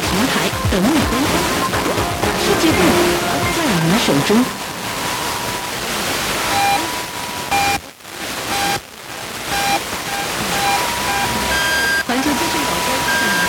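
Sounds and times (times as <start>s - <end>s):
music: 0.0s - 5.5s
steady noise: 0.0s - 13.4s
radio time-signal beeps marking 16: 0.1s - 8.8s, 9.5s - 13.4s
speech: 0.5s - 1.8s, 2.5s - 4.7s.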